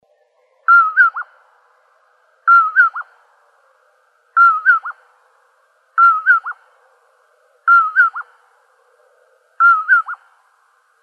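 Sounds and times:
common poorwill whistled song in Arizona: 0:00.7 - 0:01.3, 0:02.5 - 0:03.1, 0:04.4 - 0:05.0, 0:06.0 - 0:06.6, 0:07.7 - 0:08.3, 0:09.6 - 0:10.2.

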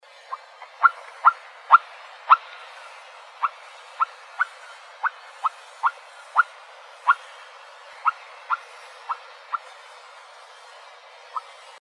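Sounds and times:
nightjar calls: 0:00.3 - 0:02.5, 0:03.4 - 0:07.3, 0:08.0 - 0:09.6.

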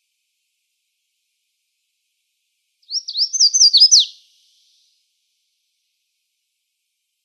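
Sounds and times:
Red-faced warbler song in Arizona: 0:02.8 - 0:04.9.

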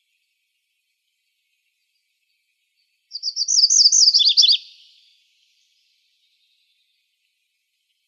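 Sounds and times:
MacGillivray's warbler singing a chattering phrase in Arizona: 0:03.1 - 0:07.0.

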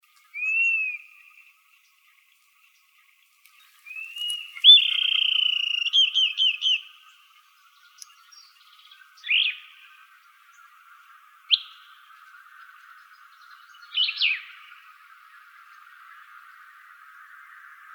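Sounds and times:
dusky-capped flycatcher whistling calls in Arizona: 0:00.2 - 0:01.5, 0:03.5 - 0:10.7, 0:11.5 - 0:16.2.

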